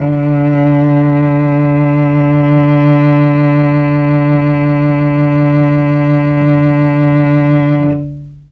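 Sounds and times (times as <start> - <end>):
Mellotron cello strings sample: 0.0 - 8.5.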